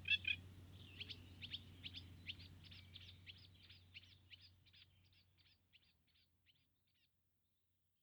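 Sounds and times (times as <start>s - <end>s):
Eurasian reed warbler singing: 0.0s - 6.2s.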